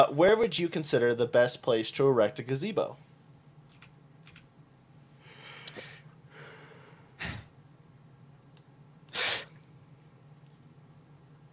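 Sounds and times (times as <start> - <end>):
speech: 0.0 - 3.1
sharp nasal sniff: 5.6 - 6.0, 7.2 - 7.5, 9.1 - 9.6
soft breathy snorts: 5.6 - 6.0, 7.2 - 7.5.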